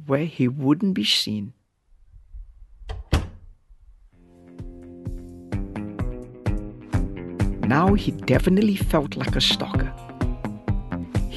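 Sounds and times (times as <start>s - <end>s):
speech: 0.1s - 1.6s, 7.7s - 10.0s
front door opening with a solid clunk and heavier thud: 2.9s - 3.4s
music with soft rhythmic beats: 4.2s - 11.3s.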